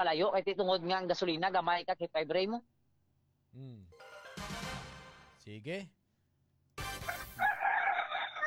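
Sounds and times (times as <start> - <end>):
speech: 0.0 - 2.7, 3.5 - 4.2, 5.4 - 6.0
rooster crowing: 7.4 - 8.4.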